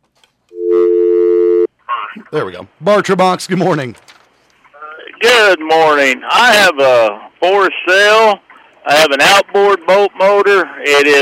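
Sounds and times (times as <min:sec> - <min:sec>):
telephone ringing with an incoming call on a call-in phone line: 0:00.5 - 0:01.7
speech: 0:02.2 - 0:04.1, 0:05.3 - 0:11.1.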